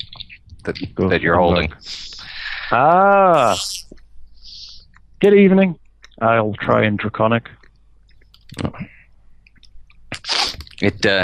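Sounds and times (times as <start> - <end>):
speech: 0.7 - 2.0, 2.7 - 3.9, 5.2 - 7.6, 10.8 - 11.2
person imitating a creature's sneeze: 3.3 - 3.9, 10.1 - 10.6.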